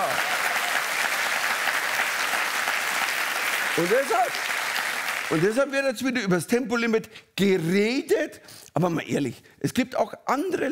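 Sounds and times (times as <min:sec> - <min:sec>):
audience applause: 0:00.0 - 0:05.7
speech: 0:03.8 - 0:04.5, 0:05.3 - 0:10.7.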